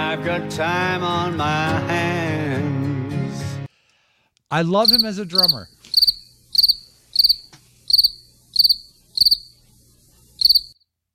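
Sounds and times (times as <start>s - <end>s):
speech: 0.1s - 2.8s, 4.5s - 7.6s, 8.7s - 9.0s
crickets chirping: 4.8s - 10.8s.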